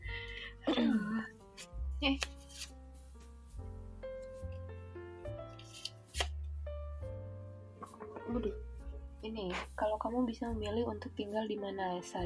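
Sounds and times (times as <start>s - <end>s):
music with sustained tones: 0.0s - 12.2s
deck of cards being riffle shuffled: 1.4s - 2.8s, 5.5s - 6.5s
speech: 2.0s - 2.4s, 9.3s - 12.2s.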